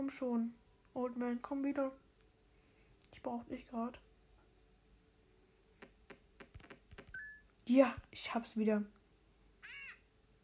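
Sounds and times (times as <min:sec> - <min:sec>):
speech: 0:00.1 - 0:02.0, 0:03.2 - 0:04.1, 0:07.7 - 0:09.0
green parrot squawking in a video game: 0:09.6 - 0:10.1.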